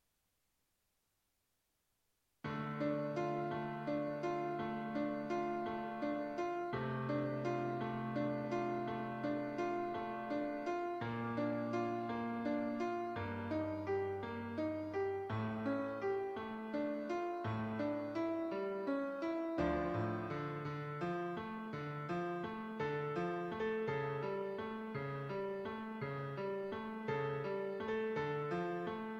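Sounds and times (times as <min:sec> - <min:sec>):
solo piano piece: 0:02.4 - 0:29.1.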